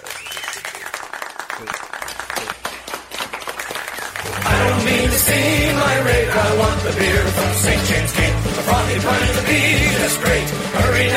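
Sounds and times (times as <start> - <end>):
group of people clapping: 0.0 - 6.0
speech: 1.6 - 2.6, 4.8 - 11.1.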